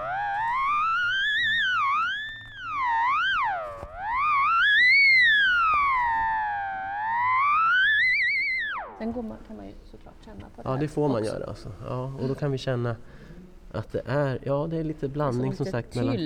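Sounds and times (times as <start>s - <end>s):
theremin gliding tone: 0.0s - 9.4s
speech: 9.0s - 16.2s.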